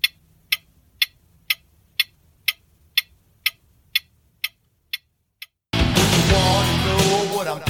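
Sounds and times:
clock timer ticking for a category word game: 0.0 - 5.6
loud music: 5.8 - 7.6.

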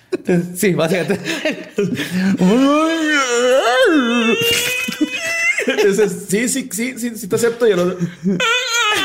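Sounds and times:
laughter: 0.0 - 2.9, 4.0 - 6.6, 7.6 - 9.0
speech: 0.2 - 8.8
human voice imitating imbunche folklore creature moans and animal cries: 2.2 - 5.6.

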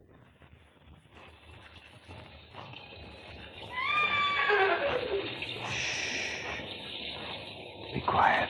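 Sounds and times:
horse descending whinny: 3.7 - 5.4
steady rain: 3.7 - 8.4.

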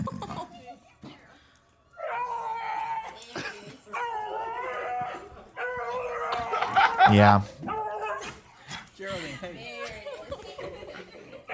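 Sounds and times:
laughter: 0.0 - 1.0, 6.3 - 7.4, 9.2 - 11.5
dog howling: 2.0 - 3.2, 4.0 - 7.0
speech: 7.1 - 7.6.

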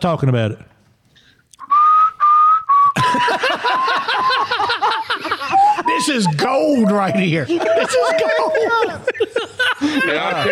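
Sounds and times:
speech: 0.0 - 0.7, 6.0 - 10.5
person whistling the theme music of a TV station: 1.6 - 4.5, 5.5 - 7.3
loud laughter: 3.0 - 10.5.

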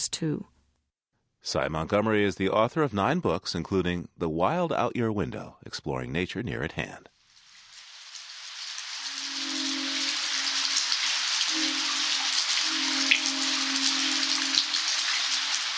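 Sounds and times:
speech: 0.0 - 0.6, 1.4 - 7.2
steady dense rainfall during a rainstorm: 7.4 - 15.7.

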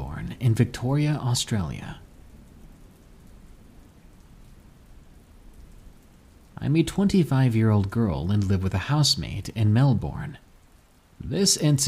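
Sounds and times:
steady heavy rain: 0.0 - 11.8
speech: 0.4 - 2.0, 6.6 - 10.5, 11.2 - 11.8.

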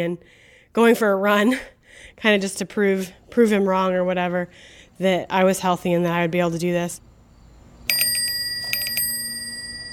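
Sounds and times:
speech: 0.0 - 7.1
bicycle bell ringing: 7.9 - 9.9.

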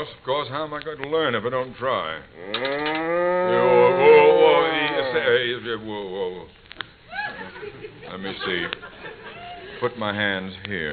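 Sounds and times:
speech: 0.0 - 4.0, 5.1 - 6.6, 8.1 - 8.9, 9.8 - 10.9
cow mooing in a barn before morning milking: 2.4 - 5.4
laughter: 7.1 - 9.9.

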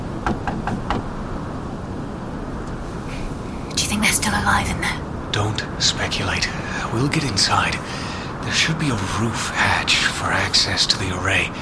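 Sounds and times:
steady rumbling noise: 0.0 - 11.6
knocking on a locked door: 0.2 - 1.1
speech: 4.2 - 11.6.

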